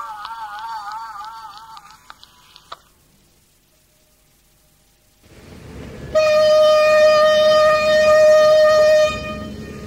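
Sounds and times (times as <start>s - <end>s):
ferry foghorn blast in dense fog on the waterfront: 5.3s - 9.8s.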